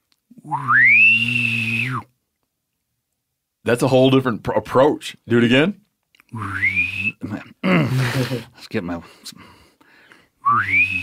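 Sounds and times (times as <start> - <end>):
person whistling: 0.4 - 2.1, 6.4 - 7.2, 10.4 - 11.0
speech: 0.5 - 1.6, 3.7 - 9.6, 10.5 - 11.0.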